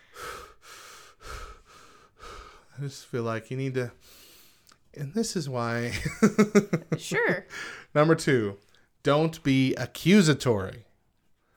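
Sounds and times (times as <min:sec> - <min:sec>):
person breathing deeply: 0:00.0 - 0:02.8, 0:04.0 - 0:04.7, 0:07.5 - 0:07.9
speech: 0:02.8 - 0:04.2, 0:05.0 - 0:10.9.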